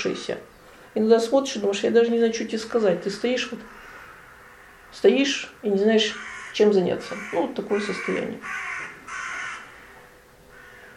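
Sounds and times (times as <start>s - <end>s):
speech: 0.0s - 3.8s, 4.9s - 8.7s
quiet outdoor noise: 0.0s - 10.9s
single harsh crow caw: 3.6s - 5.0s, 6.1s - 10.9s.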